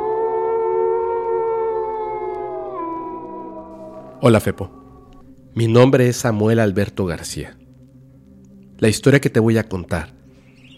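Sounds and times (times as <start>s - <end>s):
long drawn-out howl: 0.0s - 5.2s
speech: 4.2s - 4.8s, 5.6s - 7.6s, 8.8s - 10.2s.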